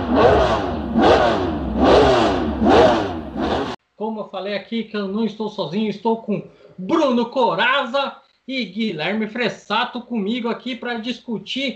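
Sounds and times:
racing car engine revving hard: 0:00.0 - 0:03.8
speech: 0:04.2 - 0:11.7.

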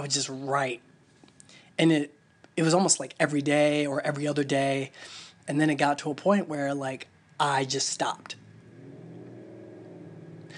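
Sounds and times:
speech: 0:00.0 - 0:00.9, 0:01.8 - 0:08.4
motorcycle engine revving on a street: 0:08.4 - 0:10.5.

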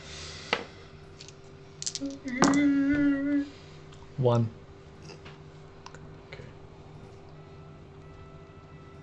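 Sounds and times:
three plastic dice clattering across a hard surface: 0:01.2 - 0:02.6
speech: 0:02.0 - 0:02.7, 0:04.2 - 0:04.6.

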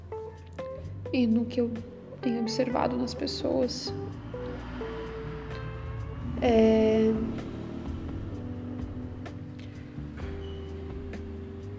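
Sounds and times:
speech: 0:01.1 - 0:04.2, 0:06.4 - 0:07.5
cars passing by: 0:02.9 - 0:11.7.

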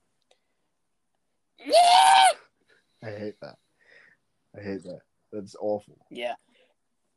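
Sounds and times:
speech: 0:01.6 - 0:01.9, 0:03.0 - 0:03.7, 0:04.5 - 0:06.6
person imitating a fox's mating scream: 0:01.6 - 0:02.4.

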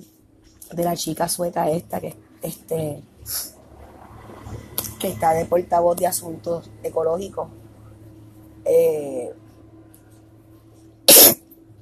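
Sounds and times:
steady low hum: 0:00.0 - 0:11.8
speech: 0:00.7 - 0:03.5, 0:05.0 - 0:07.6, 0:08.6 - 0:09.4
person sneezing: 0:11.1 - 0:11.4.

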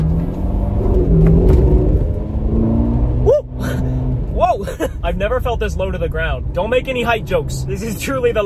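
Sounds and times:
powerful Ferrari sports car engine revving loudly: 0:00.0 - 0:04.4
speech: 0:05.1 - 0:08.4.

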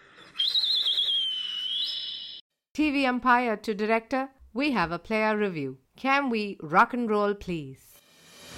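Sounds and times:
shrill high whistle blown with a slight warbling trill: 0:00.2 - 0:02.4
speech: 0:02.8 - 0:07.8.

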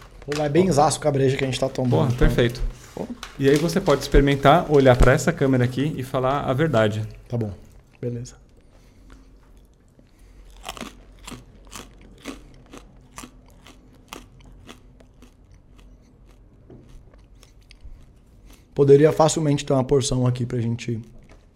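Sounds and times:
speech: 0:00.2 - 0:08.4, 0:18.8 - 0:21.1
chewing a crisp snack: 0:07.2 - 0:18.8.

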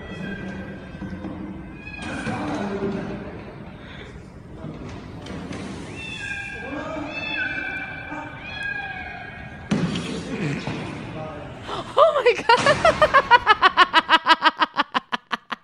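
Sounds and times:
cat meowing in a played video: 0:00.0 - 0:02.6, 0:05.9 - 0:09.7
louder rough noise: 0:00.0 - 0:13.4
laughter: 0:11.6 - 0:15.6.

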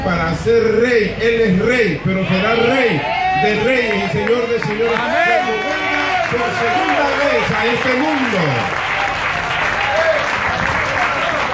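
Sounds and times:
speech: 0:00.0 - 0:09.0
congregation applauding: 0:03.4 - 0:11.5.

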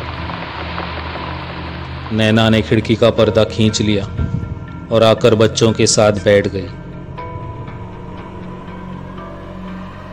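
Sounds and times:
heavy rain falling: 0:00.0 - 0:03.9
speech: 0:02.1 - 0:06.8.

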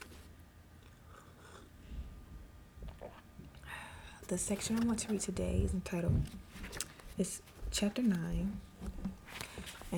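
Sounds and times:
person sipping hot tea from a cup: 0:00.8 - 0:01.8, 0:02.8 - 0:04.2
person swallowing: 0:02.8 - 0:03.7
speech: 0:04.3 - 0:09.0.

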